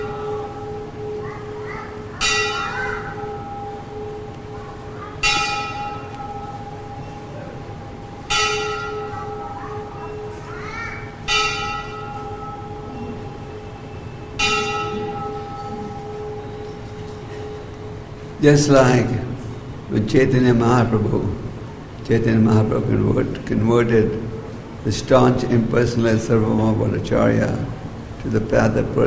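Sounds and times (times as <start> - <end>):
bell clanging: 0.0 - 10.6, 11.2 - 18.4
steady hum: 0.0 - 29.0
speech: 18.4 - 19.3, 19.9 - 21.4, 22.1 - 29.0.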